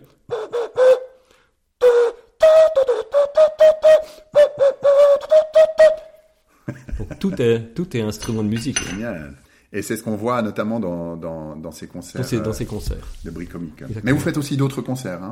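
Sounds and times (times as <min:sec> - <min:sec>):
air blown across the bevelled rim of a coffee cup whistling: 0:00.3 - 0:01.1, 0:01.8 - 0:06.2
laughter: 0:06.7 - 0:07.6
speech: 0:07.1 - 0:15.3.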